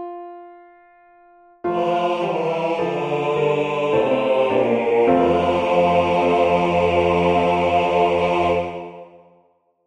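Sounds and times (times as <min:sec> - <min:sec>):
bass voices: 0:01.8 - 0:09.0.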